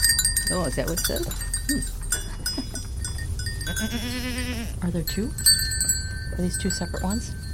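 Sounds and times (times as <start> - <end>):
herd of goats with bells clanking: 0.0 - 7.5
steady low outdoor rumble: 0.0 - 7.5
speech: 0.5 - 2.0, 3.8 - 5.6, 6.3 - 7.4
goat bleating: 3.7 - 4.8.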